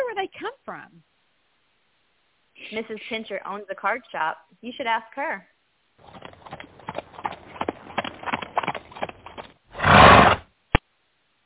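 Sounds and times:
speech: 0.2s - 1.2s, 2.6s - 6.2s
hooves of a Victorian-era horse-drawn carriage clattering in snowy weather: 6.0s - 10.4s
horse neighing loudly: 9.7s - 10.4s.

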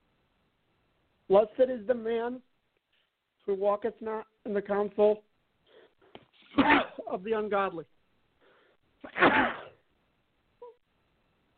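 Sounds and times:
speech: 1.3s - 2.5s, 3.4s - 5.3s, 6.6s - 7.9s, 9.0s - 9.6s
person sneezing: 6.4s - 7.1s, 9.0s - 9.8s.

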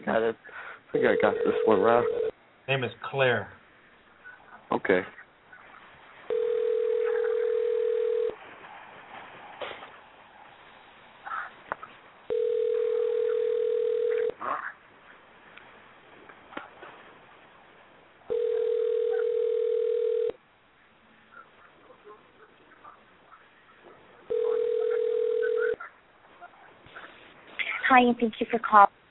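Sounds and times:
speech: 0.1s - 3.6s, 4.7s - 5.2s, 28.0s - 29.0s
faint telephone line noise: 0.9s - 27.7s
phone line ringing tone: 1.0s - 2.3s, 6.3s - 8.4s, 12.3s - 14.4s, 18.3s - 20.4s, 24.3s - 25.8s.

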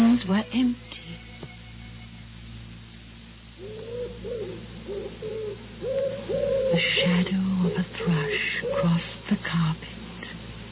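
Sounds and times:
steady low hum: 0.0s - 10.7s
wood pigeon cooing: 3.6s - 9.2s.

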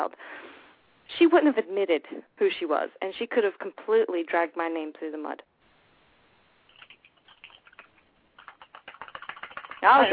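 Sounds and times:
speech: 0.0s - 0.5s, 1.1s - 5.5s, 9.8s - 10.1s
typing on a computer keyboard: 6.7s - 9.8s.

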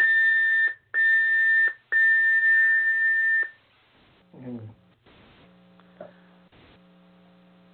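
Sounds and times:
loud electronic timer beeping: 0.0s - 3.6s.

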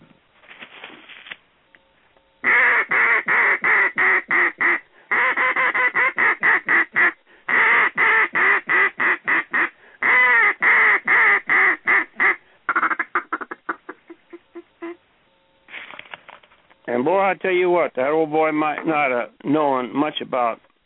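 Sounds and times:
duck call imitating hen mallard greeting calls: 2.4s - 15.0s
speech: 17.4s - 20.6s.

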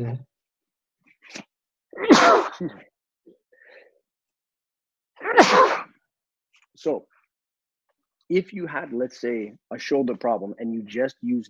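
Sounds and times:
speech: 0.0s - 0.3s, 1.3s - 2.9s, 5.2s - 5.8s, 6.8s - 7.1s, 8.3s - 11.4s
person sneezing: 2.0s - 2.8s, 5.2s - 5.9s.

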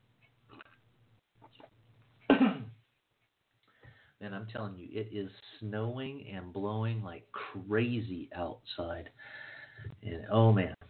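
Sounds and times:
harsh cough: 2.3s - 2.8s
throat clearing: 2.3s - 2.8s
speech: 4.2s - 10.8s.

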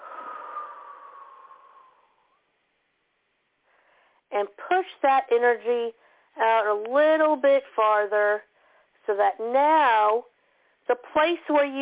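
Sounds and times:
slow deep breath exhaled: 0.0s - 2.5s
speech: 4.4s - 10.3s, 10.9s - 11.8s.

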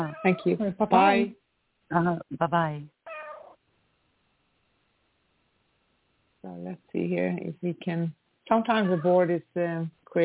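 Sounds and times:
cat meowing: 0.0s - 0.6s, 3.0s - 3.6s, 8.7s - 9.3s
speech: 0.0s - 3.0s, 6.4s - 10.2s
faint hiss: 0.0s - 10.2s.

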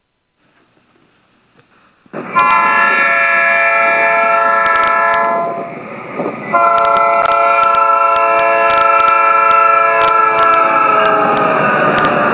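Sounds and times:
train horn blowing: 2.3s - 5.7s, 6.5s - 12.2s.

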